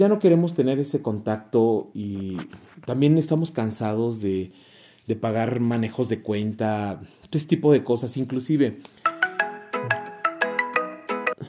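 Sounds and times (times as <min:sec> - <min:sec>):
speech: 0:00.0 - 0:09.1
mobile phone ringtone for an incoming call: 0:09.0 - 0:11.4.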